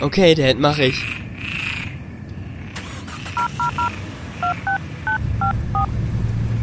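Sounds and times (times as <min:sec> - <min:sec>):
speech: 0:00.0 - 0:01.2
steady low engine-like rumble: 0:01.0 - 0:06.6
telephone keypad beeps: 0:03.4 - 0:05.2.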